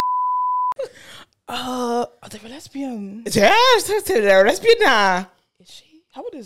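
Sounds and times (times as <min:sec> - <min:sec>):
censor bleep tone: 0:00.0 - 0:00.8
speech: 0:00.9 - 0:06.4
person groaning: 0:01.5 - 0:02.1.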